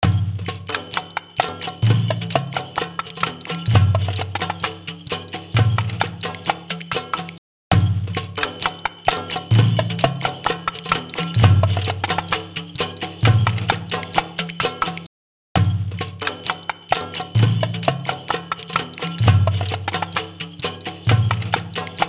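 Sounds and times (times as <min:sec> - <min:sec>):
percussion with short plate reverb: 0:00.0 - 0:22.0.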